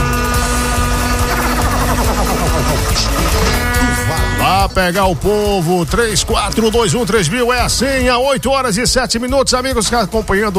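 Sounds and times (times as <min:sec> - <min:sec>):
car horn honking: 0:00.0 - 0:05.0
speech: 0:04.6 - 0:10.5.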